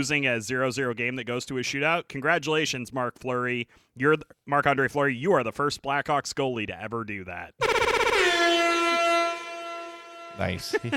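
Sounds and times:
speech: 0:00.0 - 0:08.4, 0:10.4 - 0:10.9
loud blaring air horn blast: 0:07.6 - 0:10.9
laughter: 0:10.6 - 0:10.9.

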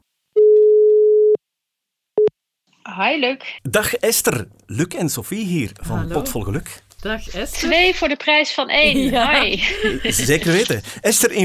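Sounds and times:
telephone ringing tone while placing a call: 0:00.4 - 0:01.4
speech: 0:03.0 - 0:11.4
laughter: 0:08.8 - 0:11.4.

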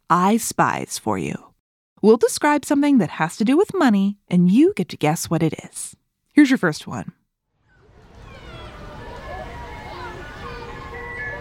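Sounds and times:
speech: 0:00.1 - 0:07.2
street noise: 0:07.7 - 0:11.4
tinkling ice cream truck jingle: 0:08.2 - 0:11.4.

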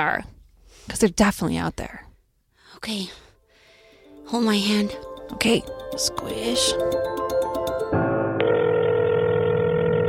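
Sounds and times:
speech: 0:00.0 - 0:02.1, 0:02.7 - 0:03.2, 0:04.3 - 0:08.0
telephone ringing with quick electronic pulses: 0:04.6 - 0:10.0.

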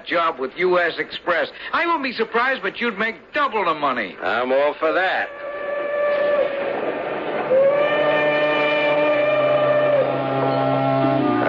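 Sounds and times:
speech: 0:00.0 - 0:05.4
steam train of ten cars rolling along tracks: 0:05.2 - 0:11.4.

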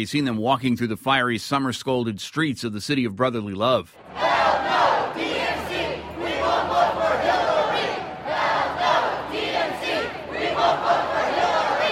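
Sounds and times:
speech: 0:00.0 - 0:04.9
large crowd of street protesters chanting: 0:04.0 - 0:11.8.

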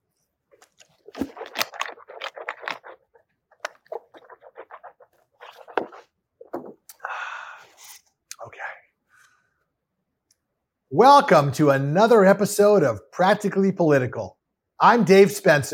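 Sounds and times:
person sipping water with slurps, gulps and clicks: 0:00.2 - 0:08.6
breathy exhale: 0:07.0 - 0:07.8
speech: 0:10.9 - 0:15.7.

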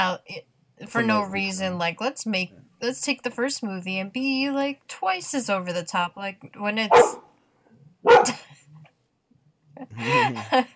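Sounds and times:
speech: 0:00.0 - 0:07.2, 0:08.0 - 0:08.4, 0:09.8 - 0:10.7
dog barking: 0:06.9 - 0:07.3, 0:08.0 - 0:08.4.

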